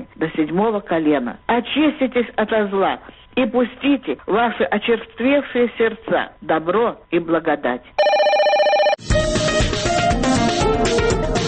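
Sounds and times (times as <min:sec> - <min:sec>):
speech: 0:00.2 - 0:08.1
telephone bell ringing: 0:08.0 - 0:09.0
loud busy music opening a radio call-in segment: 0:09.0 - 0:11.4.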